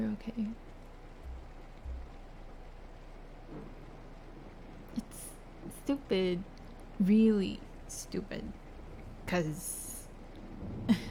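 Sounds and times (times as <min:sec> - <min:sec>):
speech: 0:00.2 - 0:00.7, 0:05.9 - 0:08.6, 0:09.3 - 0:09.9
heavy rain: 0:00.6 - 0:11.1
dull low thuds: 0:01.0 - 0:03.8.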